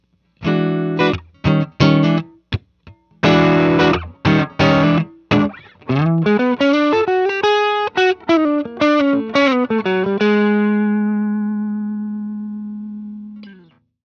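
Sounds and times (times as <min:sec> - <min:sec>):
low gain TS9 overdriven guitar: 0:00.4 - 0:13.9.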